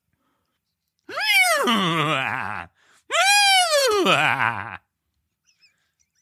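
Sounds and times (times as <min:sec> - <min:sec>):
person imitating a laughing horse whinny: 0:01.1 - 0:04.8
speech: 0:01.7 - 0:01.9, 0:04.3 - 0:04.8.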